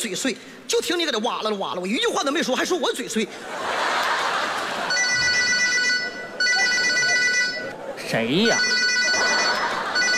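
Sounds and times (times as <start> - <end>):
speech: 0.0 - 4.0, 8.1 - 8.8
laughter: 3.3 - 8.1, 8.7 - 10.1
telephone ringing with a bright electronic tone: 4.9 - 7.7, 8.4 - 10.1.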